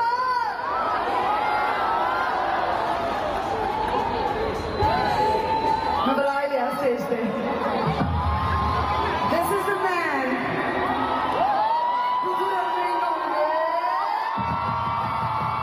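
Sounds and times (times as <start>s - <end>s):
large concert crowd cheering and whooping in New Delhi: 0.2s - 15.6s.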